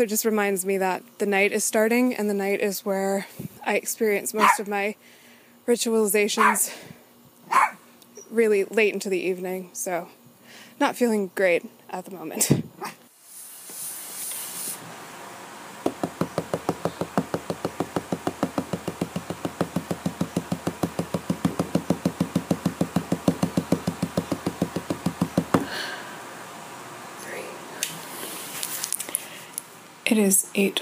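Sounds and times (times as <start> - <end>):
speech: 0.0 - 10.2, 10.8 - 12.9, 30.2 - 30.7
rapid knocking on a hard surface: 15.8 - 25.7.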